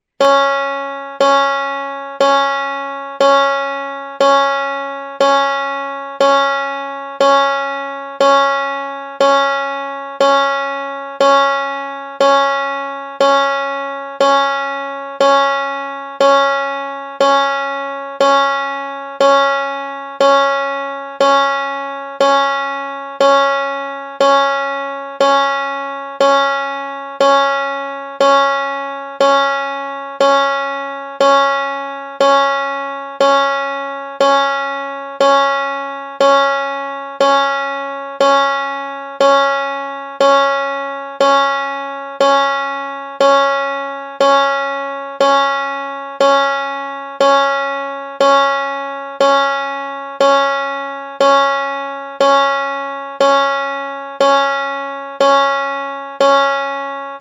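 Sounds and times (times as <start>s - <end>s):
banjo note C sharp 4: 0.2s - 57.1s.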